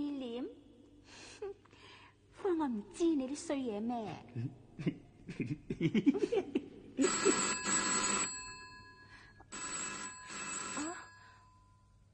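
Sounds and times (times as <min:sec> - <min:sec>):
speech: 0:02.6 - 0:07.4
laughter: 0:04.8 - 0:07.4
telephone ringing with a bright electronic tone: 0:07.0 - 0:12.0.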